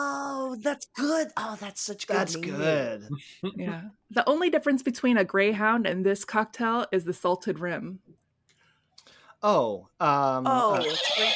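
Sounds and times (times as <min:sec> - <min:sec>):
speech: 0:00.6 - 0:08.2, 0:09.4 - 0:11.3
person imitating a horse neighing: 0:10.5 - 0:11.3.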